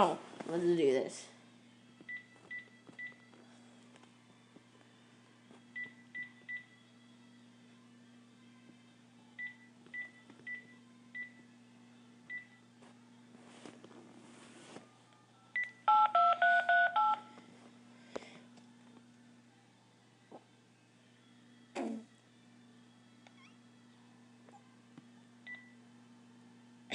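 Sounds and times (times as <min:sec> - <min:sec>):
speech: 0:00.0 - 0:01.3
rapid touch-tone telephone dialing beeps: 0:15.6 - 0:17.2.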